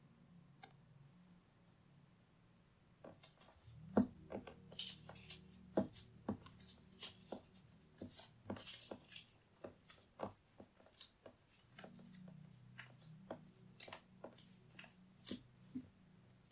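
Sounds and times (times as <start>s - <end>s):
stack of paper slips being flipped over: 3.2s - 15.5s.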